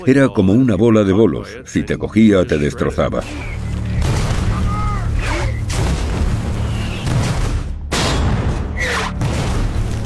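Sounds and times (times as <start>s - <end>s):
speech: 0.0s - 3.6s
heavy artillery booms along a road: 3.6s - 10.0s.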